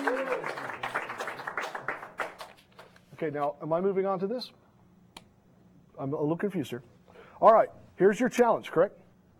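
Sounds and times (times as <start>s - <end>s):
light scattered sympathy applause from a small group: 0.0s - 2.9s
speech: 3.2s - 4.6s, 6.0s - 9.0s.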